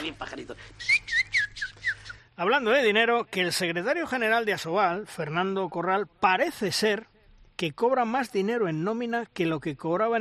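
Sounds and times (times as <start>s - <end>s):
speech: 0.1s - 1.1s, 2.4s - 10.1s
person whistling bird-like chirps: 0.8s - 2.3s.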